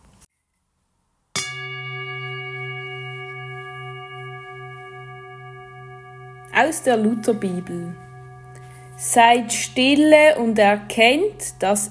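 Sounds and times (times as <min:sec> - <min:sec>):
singing bowl struck as a gong: 0:01.4 - 0:11.8
person reading a Bible verse: 0:06.6 - 0:08.0, 0:09.0 - 0:11.8
speech: 0:06.6 - 0:08.1, 0:09.0 - 0:11.8.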